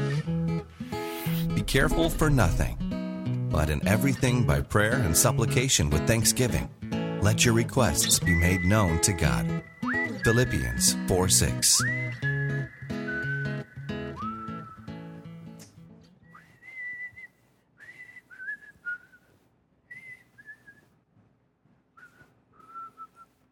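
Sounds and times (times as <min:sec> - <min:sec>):
whistled song melody at a Sunday service: 0:00.0 - 0:02.3, 0:08.0 - 0:15.4, 0:16.2 - 0:19.3, 0:22.0 - 0:23.4
full musical backing: 0:00.0 - 0:16.0
speech: 0:01.6 - 0:02.8, 0:03.5 - 0:12.3.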